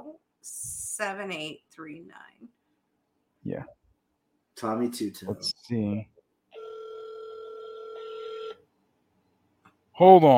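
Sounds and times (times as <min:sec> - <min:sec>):
speech: 0:00.4 - 0:02.4, 0:04.6 - 0:06.1, 0:10.0 - 0:10.3
telephone ringing with a sustained electronic ring tone: 0:06.6 - 0:08.6.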